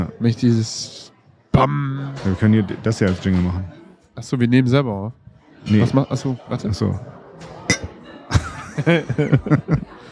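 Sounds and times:
speech: 0.2 - 7.6, 8.8 - 10.0
glasses clinking in a toast: 7.7 - 8.0
people chuckling softly: 8.2 - 10.0.

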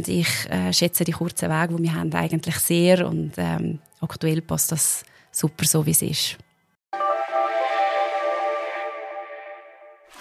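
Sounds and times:
speech: 0.0 - 6.5
steady horn-like tone: 7.0 - 10.1.

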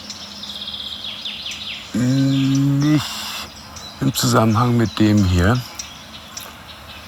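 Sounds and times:
garden warbler alarm calls: 1.7 - 6.6
speech: 1.9 - 3.2, 4.0 - 5.7
steady high insect-like hiss: 2.0 - 4.3.

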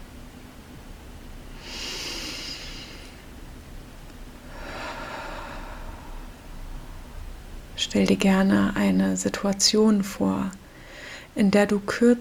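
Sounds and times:
low steady hiss: 0.0 - 12.1
slow conscious breathing in and out during a guided mindfulness exercise: 1.5 - 3.4, 4.4 - 7.5, 10.6 - 11.4
speech: 7.8 - 10.6, 11.4 - 12.1.

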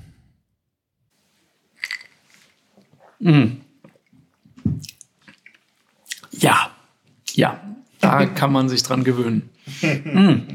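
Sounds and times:
ice clinking against glass while stirring a cocktail: 1.8 - 2.2
speech: 3.2 - 3.6, 7.4 - 10.5
laughter: 9.7 - 10.5.

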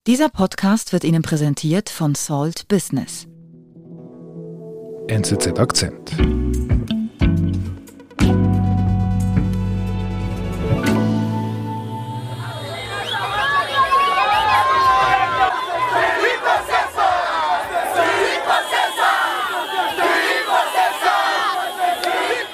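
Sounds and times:
speech: 0.0 - 3.3, 5.1 - 6.7
brief musical opening with low tones: 3.3 - 13.2
large crowd cheering and shouting celebrating an election victory: 11.8 - 22.5.

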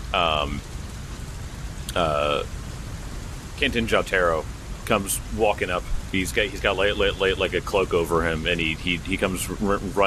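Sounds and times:
rain from a storm: 0.0 - 10.0
speech: 0.1 - 0.8, 2.0 - 2.6, 3.6 - 10.0
high-pitched voiced sounds falling slightly in pitch: 0.2 - 0.6, 9.4 - 10.0.

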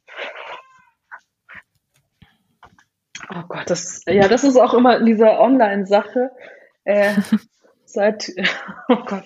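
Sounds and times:
cat yowling and meowing for food: 0.2 - 1.2
speech: 3.3 - 9.2
laughter: 7.0 - 7.4.

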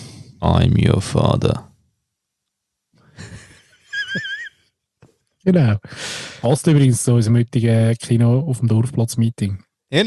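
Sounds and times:
speech: 0.4 - 1.7, 5.5 - 10.0
laughter: 3.2 - 4.5
voice imitating heavy wheezing breathing into microphone: 5.8 - 6.5.

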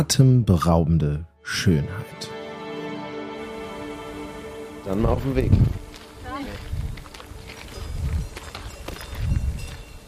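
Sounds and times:
speech: 0.0 - 2.4, 4.8 - 5.8
footsteps crunching along a hiking trail in the Austrian mountains: 5.5 - 10.0
cowbells clanking and ringing: 7.5 - 10.0.

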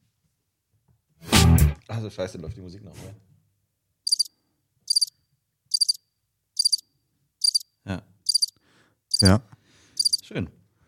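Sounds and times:
speech: 1.9 - 3.3, 9.2 - 9.5, 10.3 - 10.6
crickets chirping: 4.1 - 4.3, 4.9 - 6.0, 6.6 - 7.7, 8.3 - 9.3, 10.0 - 10.2.

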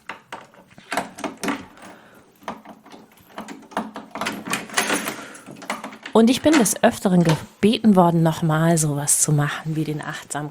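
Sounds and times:
room door being locked with key and latch: 0.0 - 7.5
speech: 6.1 - 10.5.

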